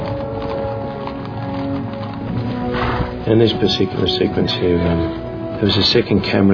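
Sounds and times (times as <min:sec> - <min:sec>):
horse hooves galloping: 0:00.0 - 0:06.5
speech: 0:03.3 - 0:06.5.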